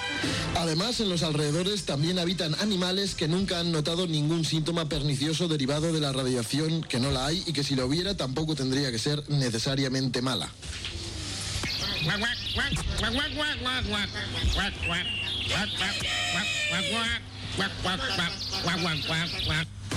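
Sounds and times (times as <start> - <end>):
speech: 0.2 - 11.0, 12.0 - 19.8
raspy buzzing voice imitating a duck with garbled squawks: 14.0 - 19.8.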